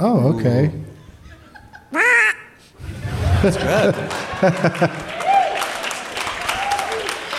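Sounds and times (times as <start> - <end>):
speech: 0.0 - 0.9, 3.4 - 5.1
noisy commotion from several people: 0.9 - 7.3
laughter: 1.0 - 5.2
person imitating a duck quack: 1.9 - 2.6.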